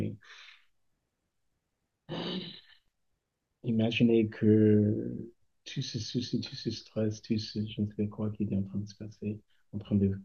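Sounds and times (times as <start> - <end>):
deep breaths in and out close to the microphone: 0.2 - 0.7
speech: 3.6 - 10.2.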